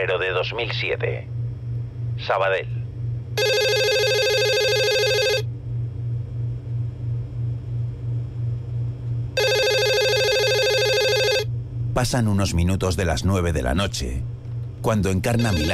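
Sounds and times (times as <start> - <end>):
speech: 0.0 - 1.4, 2.2 - 2.8, 12.0 - 15.7
low pulsing rumble: 0.0 - 3.6, 5.4 - 15.7
telephone ringing with loud electronic ring bursts: 3.4 - 5.4, 9.4 - 11.5, 15.4 - 15.7.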